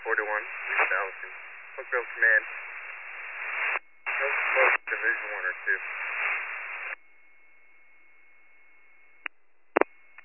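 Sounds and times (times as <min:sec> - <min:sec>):
radio static burst on a scanner transmission: 0:00.0 - 0:07.0
quiet hiss with a faint steady tone: 0:00.0 - 0:10.2
speech: 0:00.2 - 0:02.7, 0:04.9 - 0:06.1.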